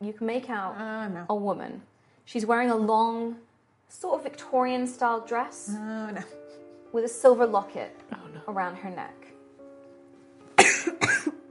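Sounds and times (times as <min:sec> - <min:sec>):
speech: 0:00.0 - 0:09.3
harsh coughs: 0:10.6 - 0:11.4.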